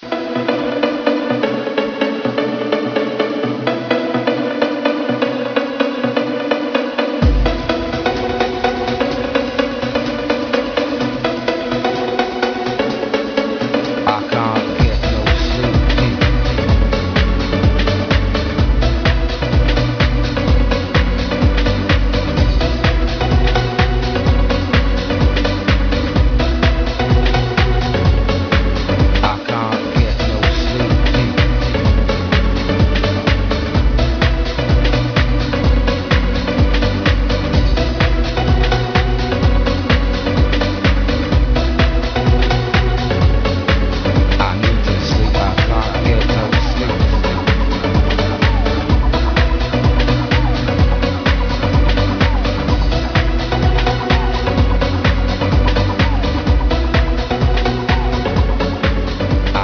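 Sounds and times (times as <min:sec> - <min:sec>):
music: 0:00.0 - 0:59.6.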